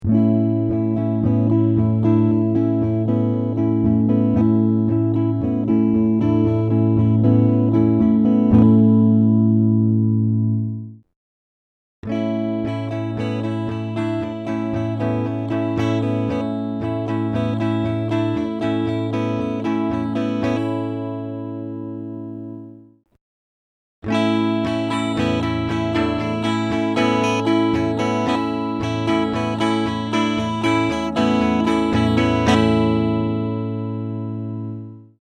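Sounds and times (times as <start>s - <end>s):
guitar: 0.0s - 11.0s, 12.0s - 23.0s, 24.0s - 35.2s.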